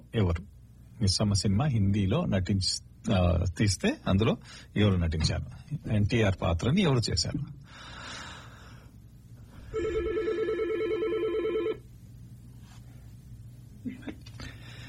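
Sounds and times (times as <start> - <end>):
low hum: 0.0 - 14.8
speech: 0.1 - 7.9
telephone ringing for an incoming call: 9.7 - 11.8.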